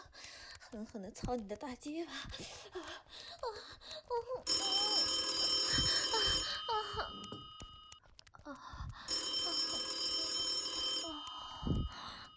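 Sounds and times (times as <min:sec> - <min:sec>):
speech: 0:00.7 - 0:02.9
telephone ringing: 0:04.5 - 0:08.0, 0:09.1 - 0:12.3.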